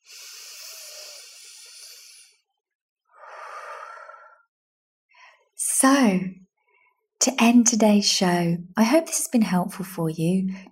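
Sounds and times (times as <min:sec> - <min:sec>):
deep breath in and out: 0:00.0 - 0:02.4, 0:03.1 - 0:04.5
speech: 0:05.8 - 0:06.4, 0:07.2 - 0:10.7.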